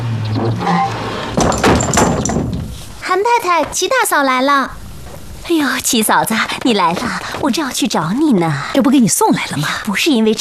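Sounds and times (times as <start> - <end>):
speech: 0.4 - 1.0, 3.1 - 4.8, 5.5 - 10.3
door rattling as it settles: 0.9 - 9.2
door pushed shut with a thud: 1.3 - 6.2.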